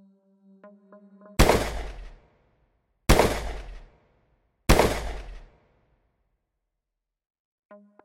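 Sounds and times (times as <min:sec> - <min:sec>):
deafening pistol shots: 0:01.4 - 0:02.3, 0:03.1 - 0:04.0, 0:04.7 - 0:05.7.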